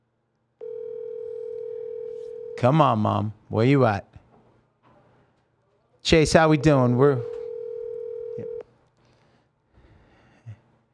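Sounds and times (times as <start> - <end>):
telephone ringing tone: 0.6 - 2.6, 7.2 - 8.6
speech: 2.6 - 4.1, 6.0 - 7.4.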